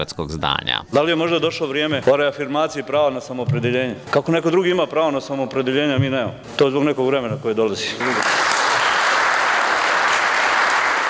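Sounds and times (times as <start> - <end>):
speech: 0.0 - 8.4
applause of many hands in a parliament hall: 8.0 - 11.0.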